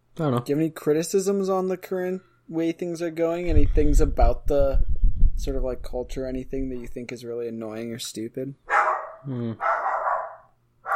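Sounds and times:
speech: 0:00.2 - 0:09.8
dog barking: 0:08.7 - 0:10.9.

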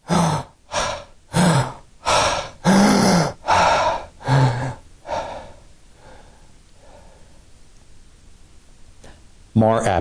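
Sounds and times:
person imitating a dying patient's apnea and catch-up breaths: 0:00.0 - 0:07.5.

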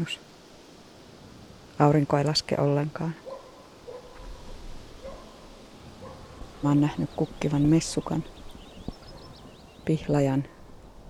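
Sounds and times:
speech: 0:00.0 - 0:00.3, 0:01.8 - 0:03.2, 0:06.6 - 0:08.4, 0:09.9 - 0:10.6
dogs barking: 0:03.2 - 0:09.8.

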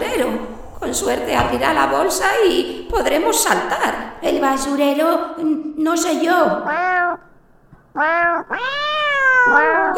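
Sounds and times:
speech: 0:00.0 - 0:07.0, 0:08.0 - 0:08.8, 0:09.5 - 0:09.9
several cats meowing loudly: 0:06.6 - 0:09.9.

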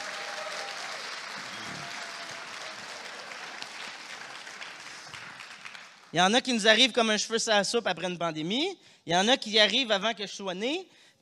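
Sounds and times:
audience applauding: 0:00.0 - 0:06.2
speech: 0:06.1 - 0:11.2.

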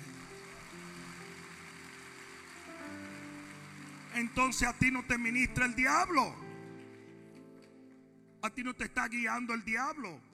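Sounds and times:
audience applauding: 0:00.0 - 0:08.1
speech: 0:04.2 - 0:06.4, 0:08.4 - 0:10.3.

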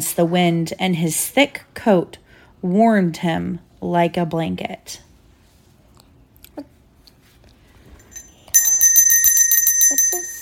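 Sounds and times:
speech: 0:00.0 - 0:05.1
bright high-pitched bell chime signalling page turn: 0:08.0 - 0:10.4.

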